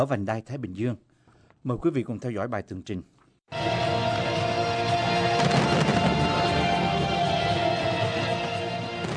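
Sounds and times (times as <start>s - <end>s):
speech: 0.0s - 3.8s
barrage of fireworks crackling and booming: 3.6s - 9.1s.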